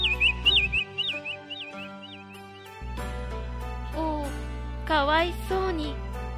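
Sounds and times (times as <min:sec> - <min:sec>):
sparrow in the grass at a garden corner chirping: 0:00.0 - 0:02.8
soft sustained musical background: 0:00.0 - 0:06.3
speech: 0:04.9 - 0:06.0.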